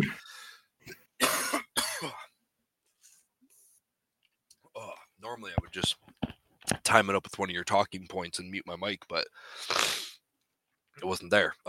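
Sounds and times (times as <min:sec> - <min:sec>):
harsh raspy coughing: 0:01.2 - 0:02.3
speech: 0:05.4 - 0:06.2, 0:06.9 - 0:10.0, 0:11.0 - 0:11.6.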